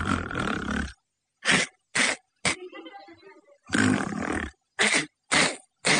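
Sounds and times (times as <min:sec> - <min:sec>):
voice imitating the loud snoring of a man asleep: 0:00.0 - 0:02.6, 0:03.7 - 0:05.9.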